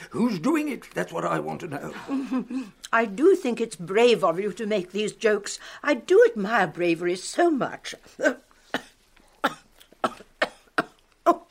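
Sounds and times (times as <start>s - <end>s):
speech: 0.1s - 8.8s
person coughing and choking on a fishbone stuck in the throat: 8.8s - 11.4s.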